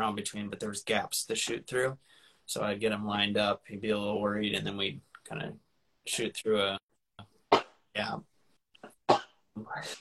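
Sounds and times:
speech: 0.1 - 6.9, 8.0 - 8.3, 9.6 - 9.9
person sneezing: 8.8 - 9.9.

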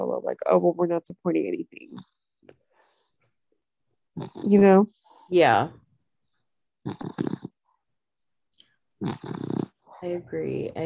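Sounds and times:
speech: 0.0 - 2.2, 4.2 - 5.8, 6.8 - 7.4, 9.0 - 10.8
dog snoring with rough rattling breaths: 4.2 - 5.3, 6.8 - 7.6, 9.0 - 10.0.

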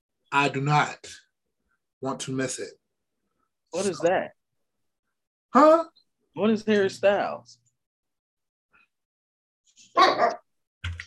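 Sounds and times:
speech: 0.3 - 1.2, 2.0 - 2.8, 3.7 - 4.4, 5.5 - 7.6, 10.0 - 10.4
dog barking: 9.9 - 10.4.

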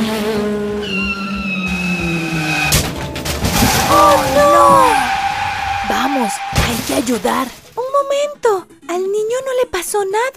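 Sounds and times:
car tires screeching: 0.2 - 7.5
car crashing into a motorcycle: 0.8 - 7.8
debris rattling and clattering: 2.7 - 7.8
speech: 7.1 - 10.3.

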